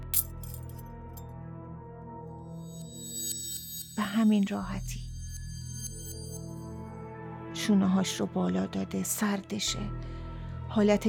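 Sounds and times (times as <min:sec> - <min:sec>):
metallic click of handcuffs closing: 0:00.0 - 0:00.8
faint metallic clinks: 0:00.1 - 0:00.8
speech: 0:04.1 - 0:05.0, 0:07.7 - 0:10.2, 0:10.8 - 0:11.0.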